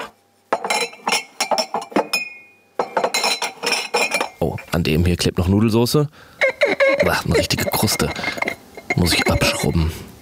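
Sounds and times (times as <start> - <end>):
glassware clinking while being washed: 0.5 - 4.7, 6.5 - 9.8
speech: 4.4 - 6.3, 7.0 - 10.1.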